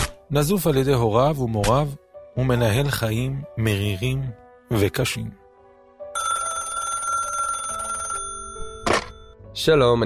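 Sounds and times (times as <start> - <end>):
speech: 0.3 - 5.4, 9.6 - 10.0
telephone ringing with an electronic trill: 6.2 - 9.4.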